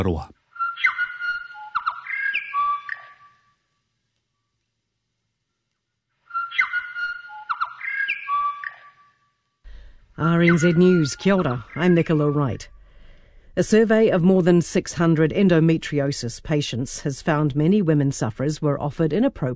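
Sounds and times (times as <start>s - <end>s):
speech: 0.0s - 0.4s, 10.2s - 12.8s, 13.6s - 19.5s
bellbird singing bell-like whistled notes: 0.6s - 3.4s, 6.3s - 9.2s, 10.2s - 12.8s.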